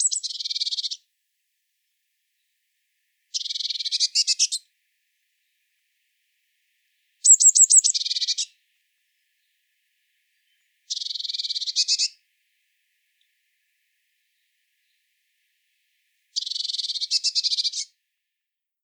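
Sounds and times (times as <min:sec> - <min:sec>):
Eurasian blue tit Cyanistes caeruleus harsh buzzy churring calls: 0:00.0 - 0:01.0, 0:03.3 - 0:04.6, 0:07.2 - 0:08.5, 0:10.9 - 0:12.2, 0:16.4 - 0:17.9.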